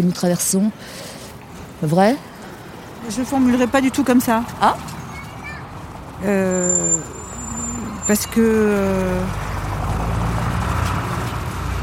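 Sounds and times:
speech: 0.0s - 1.2s, 1.8s - 2.3s, 3.0s - 5.0s, 6.2s - 7.2s, 8.1s - 9.5s
broadband road noise: 0.0s - 11.8s
heavy bus engine rumbling: 0.0s - 11.8s.

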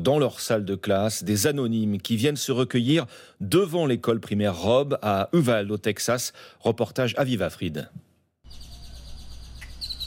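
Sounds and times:
speech: 0.0s - 8.1s
quiet outdoor background: 0.0s - 10.0s
birds chirping outside a primary school in Uvalde Texas: 8.5s - 10.0s.

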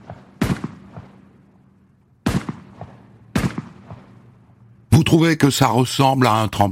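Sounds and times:
rifle gunshots with tails: 0.0s - 4.7s
speech: 5.1s - 6.7s.

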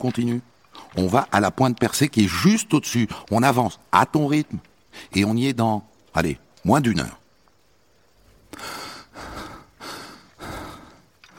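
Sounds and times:
speech: 0.0s - 7.2s
heavy breathing of an exhausted climber heading up a mountain: 8.5s - 11.3s.

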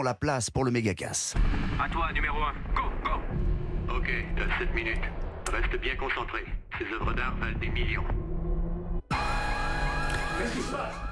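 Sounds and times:
speech: 0.0s - 8.2s, 10.4s - 11.1s
shrill alarm siren: 9.1s - 11.1s.

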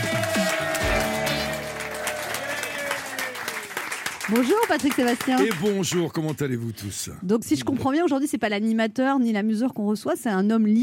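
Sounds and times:
music playing: 0.0s - 3.4s
studio audience applause: 0.0s - 6.6s
speech: 4.3s - 10.8s.

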